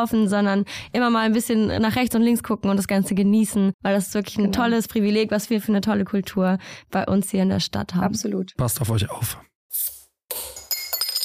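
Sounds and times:
speech: 0:00.0 - 0:10.5
glass bottles clinking together in a toast: 0:10.3 - 0:11.2.

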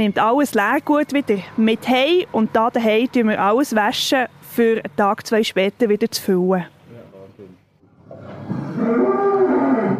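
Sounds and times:
speech: 0:00.0 - 0:06.7, 0:08.8 - 0:09.2
cows mooing in a barn: 0:07.9 - 0:09.9.

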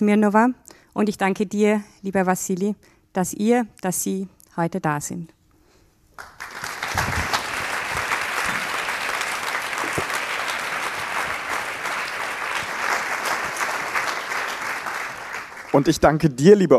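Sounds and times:
speech: 0:00.0 - 0:05.4, 0:15.8 - 0:16.7
large audience applauding: 0:06.2 - 0:16.2.

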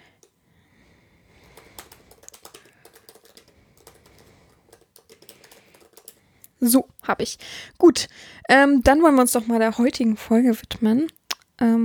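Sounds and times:
typing a sentence on a computer keyboard: 0:00.0 - 0:00.4, 0:01.3 - 0:06.6
speech: 0:06.6 - 0:11.8.

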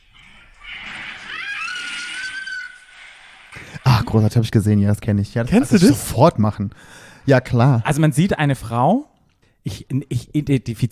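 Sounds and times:
woman screaming while sliding down a slide: 0:01.2 - 0:02.9
speech: 0:04.1 - 0:10.9.

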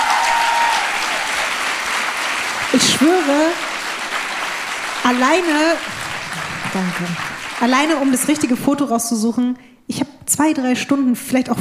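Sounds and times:
crowd applause: 0:00.0 - 0:08.8
speech: 0:03.0 - 0:03.7, 0:05.1 - 0:06.0, 0:06.7 - 0:11.5.

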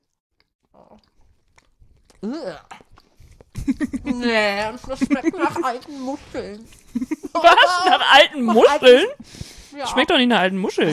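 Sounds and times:
soft mouth and chewing noises: 0:00.0 - 0:07.2
people biting into and chewing soft milk bread: 0:00.0 - 0:08.1, 0:08.7 - 0:09.8
speech: 0:00.8 - 0:01.2, 0:02.2 - 0:02.8, 0:03.7 - 0:10.9.

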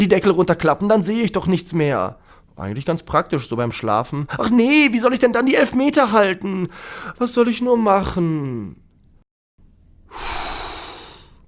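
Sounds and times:
speech: 0:00.0 - 0:08.8
man dropping into his armchair breathing out deeply: 0:06.7 - 0:07.1, 0:10.1 - 0:11.4.

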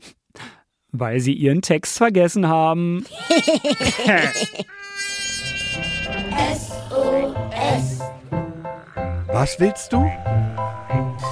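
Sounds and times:
speech: 0:00.9 - 0:04.9, 0:06.4 - 0:08.2, 0:09.3 - 0:11.0
laughter: 0:03.0 - 0:04.8
bees buzzing: 0:04.8 - 0:11.3.

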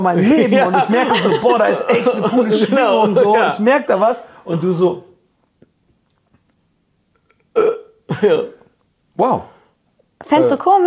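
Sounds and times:
speech: 0:00.0 - 0:05.1, 0:07.6 - 0:08.6, 0:09.2 - 0:09.5, 0:10.2 - 0:10.8
laughter: 0:00.2 - 0:03.6
woman giving a loud gravelly burp: 0:07.3 - 0:08.6.

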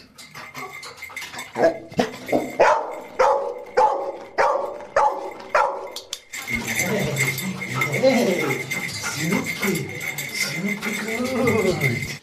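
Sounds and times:
rustling and clatter: 0:00.0 - 0:12.2
rescue dog barking to indicate found person: 0:01.6 - 0:06.0.

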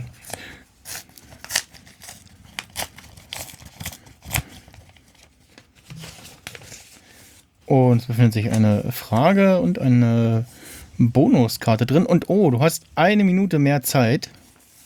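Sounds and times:
envelope being opened with paper rustling, crinkling and tearing: 0:00.0 - 0:05.3
speech: 0:07.7 - 0:14.4.

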